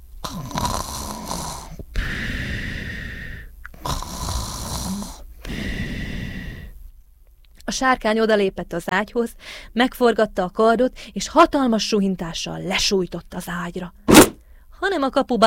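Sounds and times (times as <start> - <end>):
loud rasping snores: 0.2 - 3.2, 3.8 - 5.2
speech: 7.7 - 14.0, 14.8 - 15.4.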